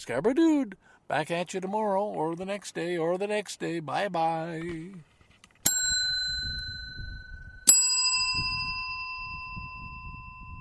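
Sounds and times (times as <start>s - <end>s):
speech: 0.0s - 5.1s
road track bell ringing: 5.7s - 10.5s.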